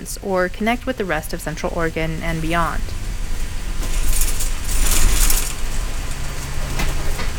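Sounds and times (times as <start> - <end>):
speech: 0.0 - 3.0
hissy rattling noise: 0.0 - 7.3
transit bus engine rumbling while pulling up to a stop: 0.0 - 7.3.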